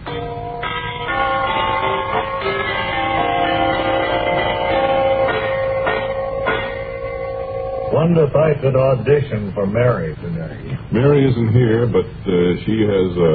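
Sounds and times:
brass door chimes ringing: 0:00.0 - 0:08.6
speech: 0:08.1 - 0:13.3.

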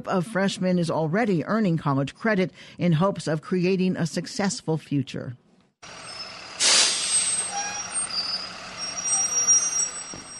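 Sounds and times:
speech: 0:00.0 - 0:06.1
bus engine idling: 0:05.8 - 0:10.3
bus air brakes hissing: 0:06.0 - 0:10.3
faint high-pitched squeaks: 0:06.0 - 0:10.3.

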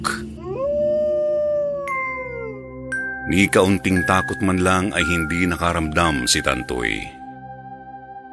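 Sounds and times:
mountain dog howling: 0:00.4 - 0:02.8
speech: 0:03.3 - 0:07.2.

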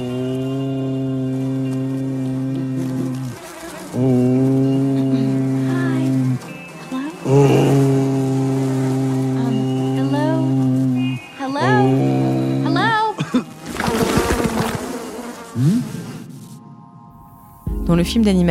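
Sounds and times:
swarm of flies buzzing: 0:00.0 - 0:17.6
speech: 0:04.0 - 0:04.2, 0:18.0 - 0:18.4.

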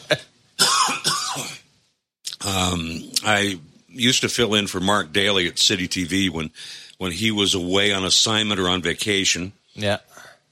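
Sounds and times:
loud harsh raspy coughs: 0:00.0 - 0:01.7
speech: 0:02.5 - 0:10.3.

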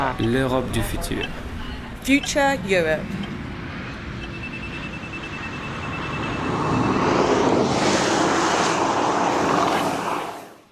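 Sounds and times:
speech: 0:00.0 - 0:03.3
electric car made in Croatia speeding past: 0:05.0 - 0:10.7.

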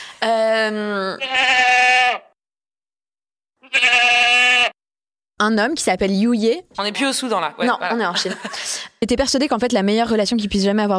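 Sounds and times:
speech: 0:00.2 - 0:01.6, 0:05.4 - 0:10.9
goat bleating: 0:01.2 - 0:02.4, 0:03.6 - 0:04.8
laughter: 0:07.6 - 0:09.0.

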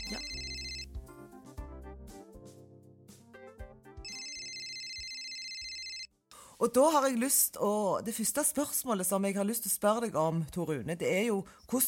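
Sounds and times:
telephone ringing in trilling bursts: 0:00.0 - 0:00.9, 0:04.0 - 0:06.1
speech: 0:06.6 - 0:11.8.

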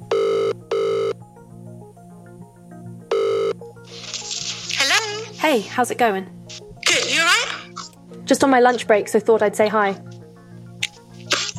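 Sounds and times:
telephone ringing in a buzzing double ring: 0:00.0 - 0:01.2, 0:03.1 - 0:03.7
soft music: 0:00.0 - 0:11.5
speech: 0:05.4 - 0:06.4, 0:08.3 - 0:10.1.

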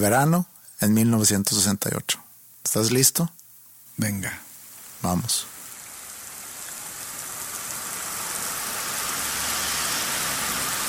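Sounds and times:
speech: 0:00.0 - 0:03.4, 0:04.0 - 0:05.5
steady rain on a city street in London: 0:05.7 - 0:10.8.

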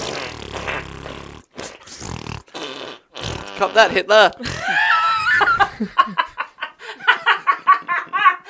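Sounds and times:
fart sound effects: 0:00.0 - 0:04.1
speech: 0:03.6 - 0:04.6
laughter: 0:04.5 - 0:08.4.

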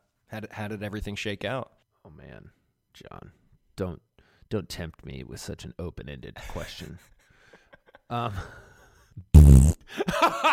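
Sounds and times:
speech: 0:00.3 - 0:07.2, 0:08.1 - 0:08.6, 0:09.2 - 0:10.5
person imitating a fart with their mouth: 0:09.3 - 0:09.9.

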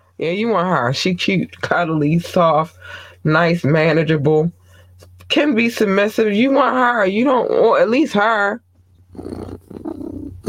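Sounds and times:
speech: 0:00.2 - 0:04.6, 0:05.3 - 0:08.6
human voice imitating a cat's purr: 0:09.1 - 0:10.4.

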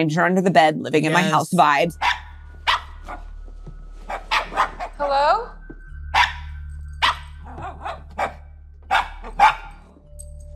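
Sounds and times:
speech: 0:00.0 - 0:02.2, 0:05.0 - 0:05.6
dog barking in short sharp bursts: 0:02.0 - 0:03.2, 0:04.1 - 0:05.0, 0:06.2 - 0:09.9.

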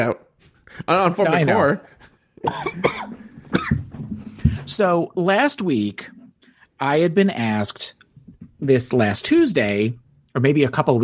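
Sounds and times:
speech: 0:00.0 - 0:06.2, 0:06.8 - 0:11.0
person coughing in harsh bursts: 0:02.4 - 0:03.9
rough throat clearing: 0:02.4 - 0:03.9.

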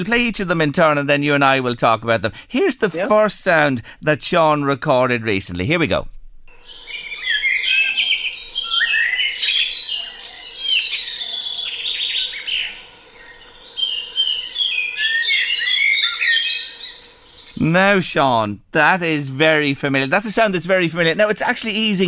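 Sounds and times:
speech: 0:00.0 - 0:06.2, 0:17.6 - 0:22.0
dawn chorus of many birds singing: 0:06.5 - 0:17.7.

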